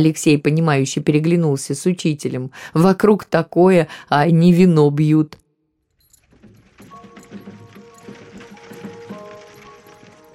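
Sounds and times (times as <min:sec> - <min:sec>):
speech: 0:00.0 - 0:05.4
creaking: 0:05.8 - 0:10.3
metallic jingling: 0:05.8 - 0:10.3
horse hooves clip-clopping at a slow walk: 0:05.9 - 0:10.3
horse-drawn cart rolling: 0:05.9 - 0:10.3.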